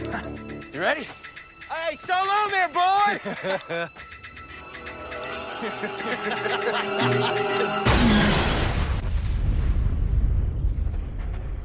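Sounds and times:
speech: 0:00.2 - 0:04.1, 0:05.6 - 0:07.9
laughter: 0:03.0 - 0:07.8
explosion of explosives swapped into a money bag: 0:07.9 - 0:11.6.

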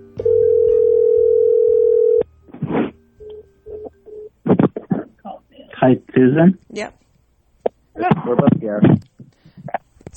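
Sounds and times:
telephone dial tone: 0:00.3 - 0:02.2
speech: 0:05.8 - 0:07.0, 0:08.0 - 0:09.0.

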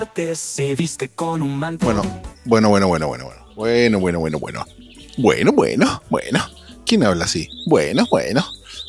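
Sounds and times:
speech: 0:00.1 - 0:08.8
small bird chirping faintly: 0:01.9 - 0:08.8.

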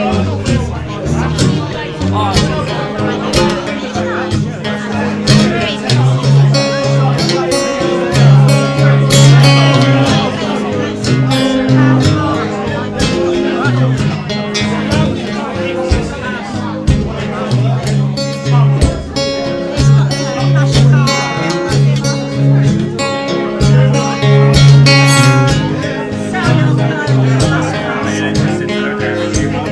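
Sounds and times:
blues guitar in a London pub: 0:00.0 - 0:29.7.

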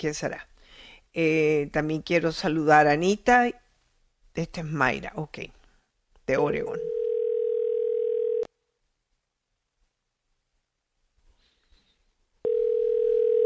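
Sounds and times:
speech: 0:00.0 - 0:00.5, 0:01.1 - 0:03.6, 0:04.4 - 0:05.6, 0:06.3 - 0:06.9
ringback tone of an outgoing phone call: 0:06.8 - 0:08.5, 0:12.4 - 0:13.4.

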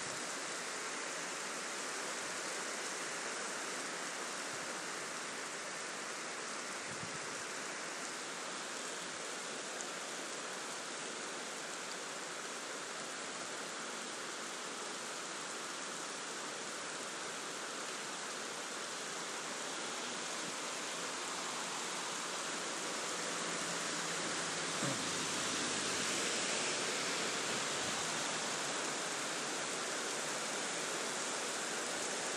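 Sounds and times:
heavy rain pouring: 0:00.0 - 0:32.3.

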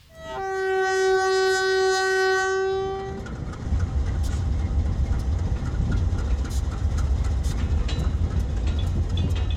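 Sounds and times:
freight train horn blast: 0:00.0 - 0:03.3
low rumble and clatter of rolling freight train wagons: 0:02.5 - 0:09.5.

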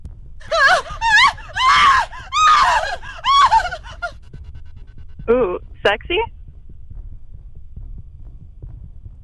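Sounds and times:
person letting out shrill scary screams: 0:00.5 - 0:03.8
speech: 0:05.9 - 0:06.4.

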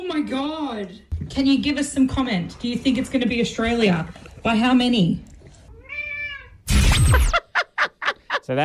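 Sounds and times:
speech: 0:00.3 - 0:05.3, 0:08.5 - 0:08.6
pet cat meowing: 0:05.7 - 0:06.7
laughter: 0:07.2 - 0:08.6.

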